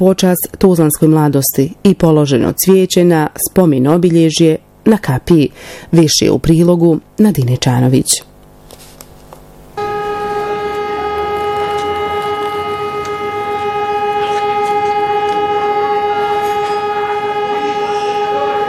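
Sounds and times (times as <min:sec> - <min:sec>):
speech: 0:00.0 - 0:08.3
memorial siren sounding in Tuzla: 0:09.8 - 0:18.6.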